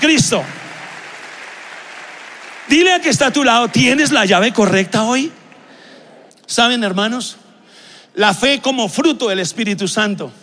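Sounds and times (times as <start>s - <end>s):
speech: 0.0s - 0.7s, 2.7s - 5.4s, 6.5s - 7.4s, 8.2s - 10.4s
audience applauding: 0.0s - 5.9s.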